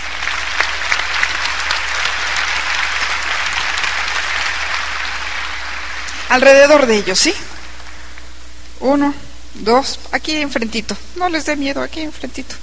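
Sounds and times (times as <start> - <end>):
sizable audience applauding: 0.0 - 8.1
speech: 6.3 - 7.5, 8.8 - 12.6.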